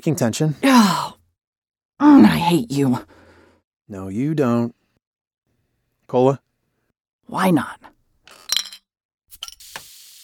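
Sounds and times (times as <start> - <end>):
speech: 0.0 - 1.2, 2.0 - 3.2, 3.9 - 4.8, 6.1 - 6.4, 7.3 - 7.9
drink containers clinking in a toast: 8.3 - 8.8.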